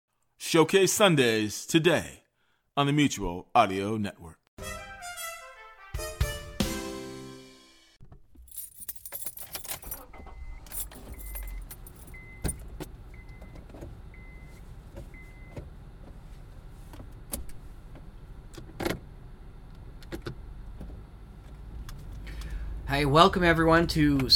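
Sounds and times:
speech: 0.4 - 2.2, 2.8 - 4.8, 23.0 - 24.3
keys jangling: 8.4 - 12.6
road rumble in a car cabin: 8.5 - 24.3.

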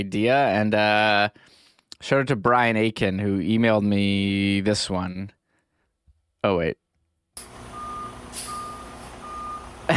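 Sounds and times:
speech: 0.0 - 5.4, 6.4 - 6.8
low engine rumble: 7.4 - 9.9
vehicle reversing warning beeps: 7.6 - 9.9.

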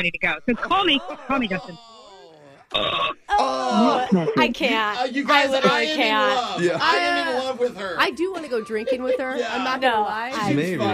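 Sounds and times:
speech: 0.0 - 1.9, 2.7 - 10.9
laughter: 0.5 - 2.7, 3.3 - 7.7, 8.3 - 10.9
throaty croaking burps: 2.1 - 4.1.

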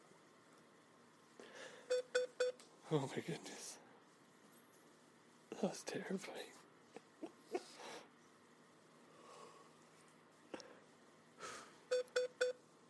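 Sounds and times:
short electronic beeps: 1.9 - 2.6, 11.9 - 12.6
speech: 2.9 - 3.7, 5.6 - 6.6.

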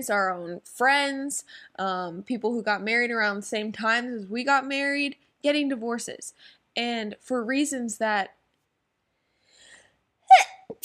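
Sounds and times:
speech: 0.0 - 8.4, 10.3 - 10.8
person sneezing: 10.3 - 10.8.

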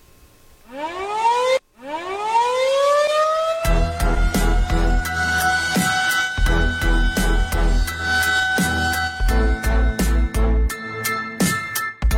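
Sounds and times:
air raid siren winding up in rising wails: 0.7 - 11.2
loud percussive rock music with crashing drum hits: 3.7 - 12.1.

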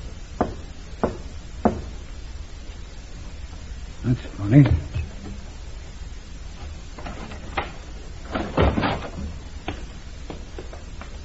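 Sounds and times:
faint steady hiss: 0.0 - 11.2
man knocking on a warehouse side door: 0.4 - 2.0
speech: 4.1 - 5.0.

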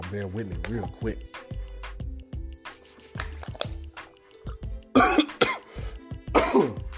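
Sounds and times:
speech: 0.1 - 1.6
man with a cold coughing: 4.9 - 5.7, 6.3 - 6.9
man with a cold clearing his throat: 5.0 - 5.6, 6.3 - 6.9.

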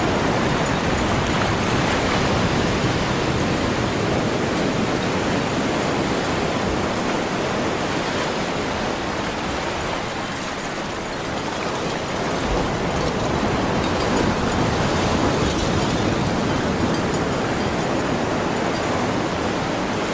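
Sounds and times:
ocean waves washing in a steady roar: 0.0 - 20.1.

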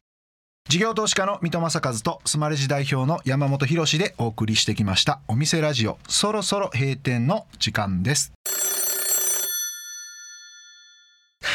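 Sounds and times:
speech: 0.7 - 8.6
telephone bell ringing: 8.4 - 11.4.

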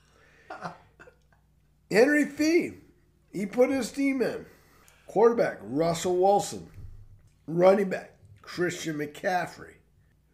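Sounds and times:
faint hum: 0.0 - 10.3
person clearing throat: 0.5 - 1.3
speech: 1.9 - 6.8, 7.5 - 9.8.

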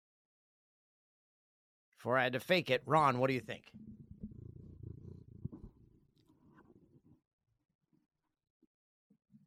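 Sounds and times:
speech: 2.0 - 4.0
cat purring: 3.7 - 7.2.

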